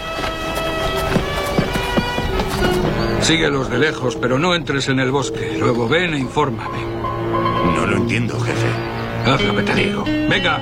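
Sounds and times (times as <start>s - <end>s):
horse hooves clip-clopping at a walking pace: 0.0s - 4.0s
speech: 3.2s - 10.6s.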